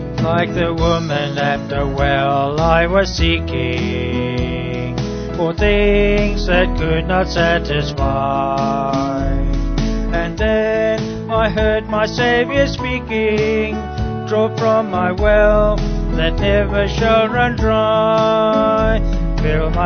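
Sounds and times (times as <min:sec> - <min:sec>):
band with vocals: 0:00.2 - 0:19.8.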